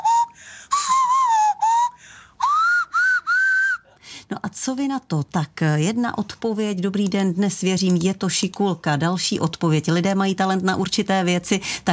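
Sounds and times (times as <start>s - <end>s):
woman whistling through her nose: 0.0s - 3.9s
speech: 4.3s - 11.9s.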